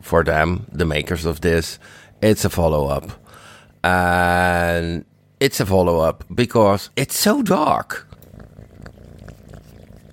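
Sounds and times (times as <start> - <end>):
speech: 0.0 - 3.2, 3.8 - 8.1
cat purring on a person's lap: 7.7 - 10.1.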